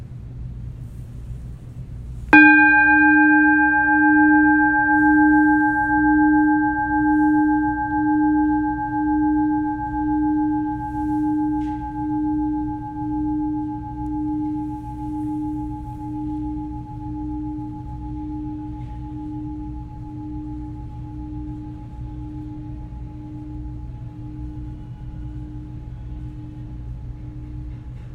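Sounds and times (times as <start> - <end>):
single bell strike ringing: 2.4 - 21.8.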